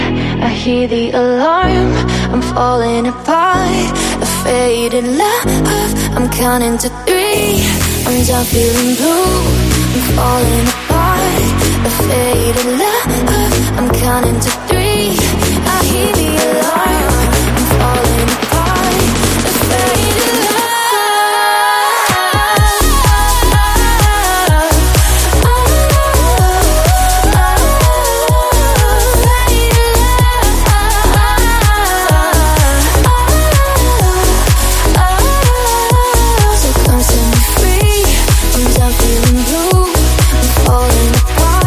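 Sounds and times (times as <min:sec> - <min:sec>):
upbeat dance-pop track by a female singer: 0:00.0 - 0:41.6
speech: 0:00.4 - 0:10.9, 0:11.8 - 0:15.4.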